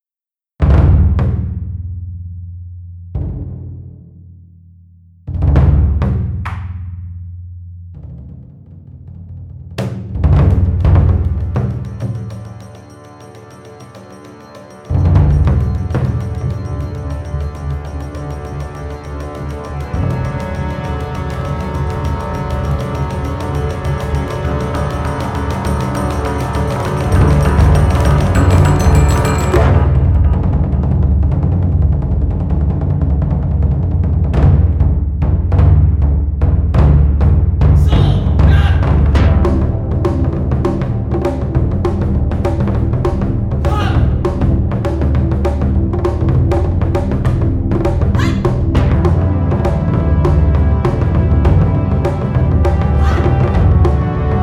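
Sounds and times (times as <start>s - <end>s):
taiko drum overture: 0.6s - 2.2s, 3.1s - 4.2s, 5.3s - 7.2s, 7.9s - 54.4s.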